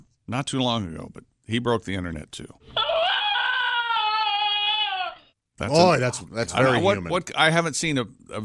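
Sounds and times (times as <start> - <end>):
speech: 0.3 - 2.9, 5.6 - 8.4
small terrier-like dog screaming: 2.8 - 5.3.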